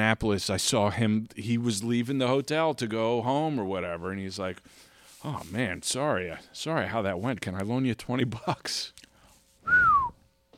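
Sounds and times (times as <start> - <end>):
speech: 0.0 - 10.0
person whistling into the microphone: 9.6 - 10.2.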